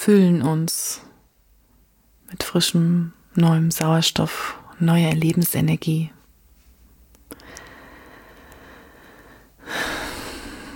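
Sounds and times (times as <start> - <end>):
speech: 0.0 - 1.1, 2.3 - 6.2
slow deep breathing during a guided relaxation exercise: 7.3 - 10.7.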